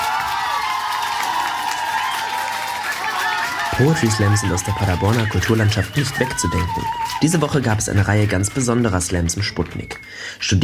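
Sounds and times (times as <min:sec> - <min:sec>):
poetry slam audience shouts and whoops: 0:00.0 - 0:08.6
poetry slam audience clapping: 0:00.0 - 0:10.1
speech: 0:03.8 - 0:10.6.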